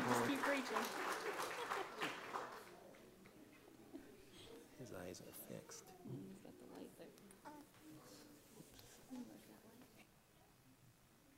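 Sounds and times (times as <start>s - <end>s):
audience clapping: 0.0s - 3.1s
quiet room noise: 0.0s - 11.3s
speech: 0.5s - 1.4s, 4.8s - 9.8s.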